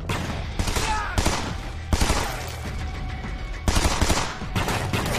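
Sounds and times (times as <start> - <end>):
rapid bursts of automatic gunfire: 0.2 - 2.5, 3.7 - 5.1.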